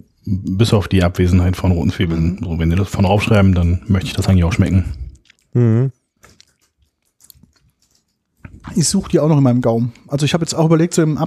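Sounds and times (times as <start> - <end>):
speech: 0.3 - 6.0, 8.7 - 11.2
crunchy potato chips being chewed: 4.9 - 9.0.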